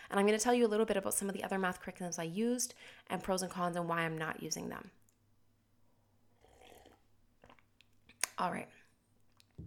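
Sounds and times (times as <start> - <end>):
speech: 0.1 - 5.0, 8.4 - 8.8
quiet slurping sip of cold coffee from a mug: 6.3 - 7.7.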